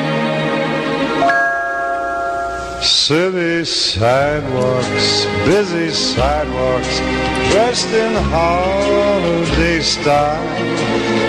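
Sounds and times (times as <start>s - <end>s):
bell ringing: 1.1s - 3.2s
speech: 2.8s - 11.2s.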